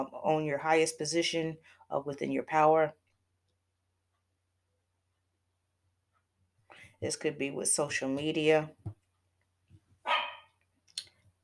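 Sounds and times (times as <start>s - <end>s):
speech: 0.0s - 3.0s, 7.0s - 9.0s
dog barking: 10.1s - 10.6s.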